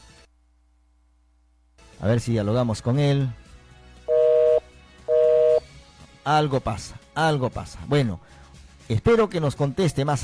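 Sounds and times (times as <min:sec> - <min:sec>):
speech: 0:02.0 - 0:03.4, 0:06.3 - 0:10.2
outgoing call tone beeps from a messaging-app voice call: 0:04.1 - 0:05.6.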